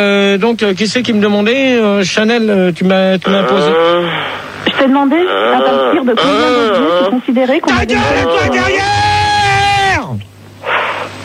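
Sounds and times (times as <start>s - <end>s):
speech: 0.0s - 9.1s
man yelling loudly: 7.7s - 10.2s
short breathy noise: 10.6s - 11.2s.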